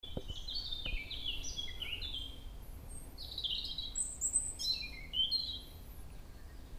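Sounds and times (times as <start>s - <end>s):
common blackbird song: 0.0s - 6.7s.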